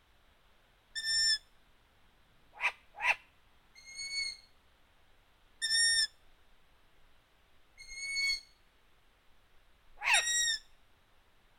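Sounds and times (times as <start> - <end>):
long-eared owl calling: 1.0 - 1.4, 2.6 - 3.2, 3.8 - 4.5, 5.6 - 6.1, 7.8 - 8.5, 10.0 - 10.7.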